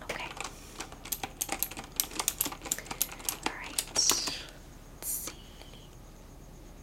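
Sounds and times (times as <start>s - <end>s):
typing on a computer keyboard at a bed and breakfast check-in desk: 0.1s - 4.4s.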